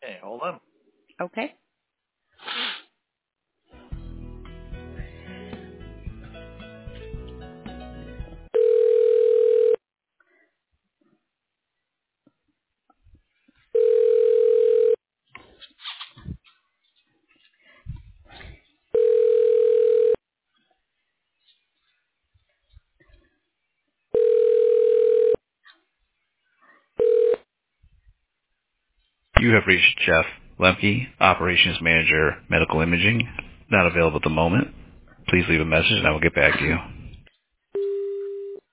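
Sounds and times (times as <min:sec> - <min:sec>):
speech: 0:00.2 - 0:01.6, 0:29.6 - 0:36.9
telephone ringback on a hospital radiology line: 0:08.5 - 0:09.8, 0:13.7 - 0:15.0, 0:19.0 - 0:20.2, 0:24.2 - 0:25.4, 0:27.0 - 0:27.4, 0:37.8 - 0:38.6.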